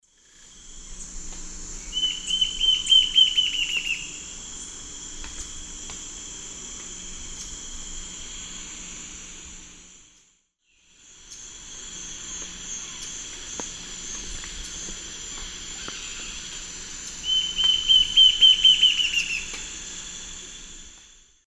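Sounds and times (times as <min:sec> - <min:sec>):
Lepidocolaptes albolineatus song in the Eastern Lowlands of South America: 0:01.9 - 0:04.2, 0:17.2 - 0:19.6.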